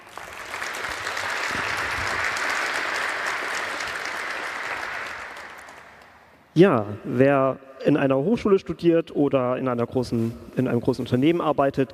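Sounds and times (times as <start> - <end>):
crowd applauding with dense clapping: 0.0 - 6.3
speech: 6.6 - 11.9.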